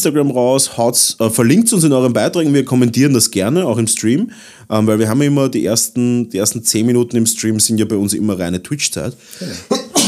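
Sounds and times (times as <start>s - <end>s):
speech: 0.0s - 9.8s
person sneezing: 9.4s - 10.0s.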